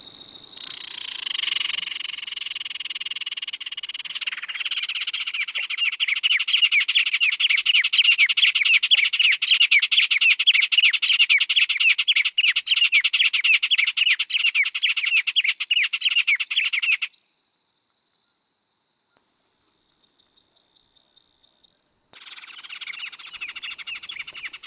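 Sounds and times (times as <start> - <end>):
White-rumped tanager hirundinacea giving a fast run of chirping notes: 0.6 - 17.1, 22.2 - 24.6.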